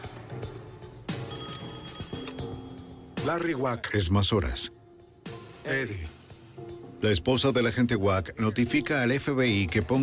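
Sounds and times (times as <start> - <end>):
telephone ringing with an incoming call: 1.2 - 3.0
speech: 3.2 - 4.8, 5.6 - 6.2, 7.0 - 10.0.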